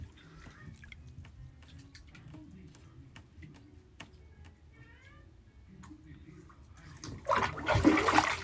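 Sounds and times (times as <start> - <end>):
bathwater with soap and vinegar draining out of a tub: 7.2 - 8.4.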